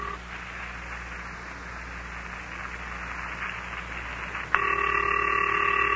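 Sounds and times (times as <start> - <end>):
telephone line hiss: 0.0 - 5.9
ringing tone over a telephone line: 4.6 - 5.9.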